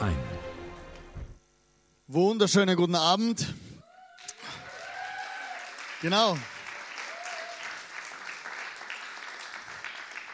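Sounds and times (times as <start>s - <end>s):
speech: 2.1s - 3.6s, 6.0s - 6.5s
crowd clapping: 4.2s - 10.3s.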